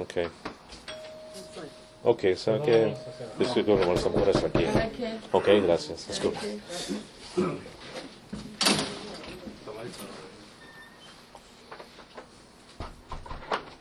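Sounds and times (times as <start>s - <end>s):
speech: 0.0s - 0.5s, 1.6s - 7.9s
loud sharp police knocks on a door: 3.7s - 5.0s.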